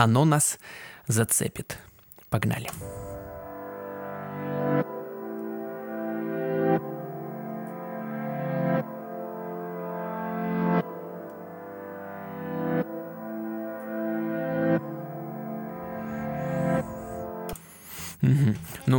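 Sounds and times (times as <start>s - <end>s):
speech: 0.0s - 3.0s
music intro of sustained rich chords: 2.8s - 17.8s.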